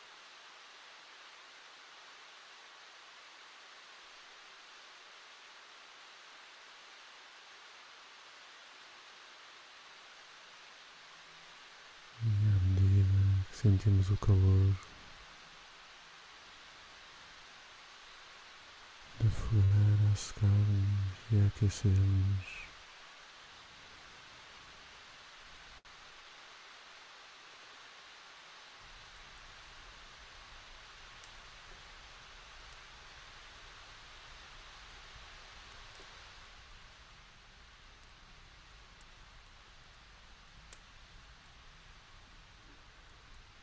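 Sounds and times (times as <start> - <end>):
dense rain falling outside: 0.0 - 43.6
faint patters and ticks of rain: 9.8 - 26.9, 27.8 - 43.6
speech: 13.6 - 14.9, 19.5 - 22.6.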